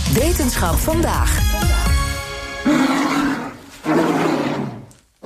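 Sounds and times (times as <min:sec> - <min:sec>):
speech: 0:00.2 - 0:01.8, 0:03.9 - 0:04.4
polar bear roaring: 0:02.6 - 0:05.2.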